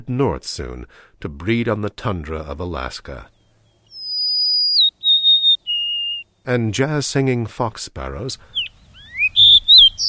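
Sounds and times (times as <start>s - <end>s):
speech: 0.1s - 3.4s, 6.4s - 8.6s
golden-crowned sparrow three-note whistled song in Washington: 3.4s - 6.3s, 8.5s - 10.0s.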